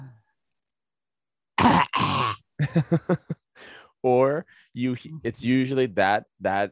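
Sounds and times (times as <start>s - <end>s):
person imitating a child's dry cough with mouth open and tongue out: 1.6s - 2.4s
speech: 2.6s - 6.6s.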